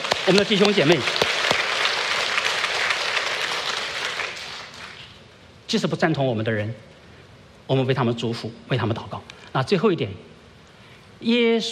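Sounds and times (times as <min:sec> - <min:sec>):
crowd applauding in a large room: 0:00.0 - 0:05.2
speech: 0:00.3 - 0:01.2, 0:05.7 - 0:06.9, 0:07.7 - 0:10.3, 0:11.2 - 0:11.7.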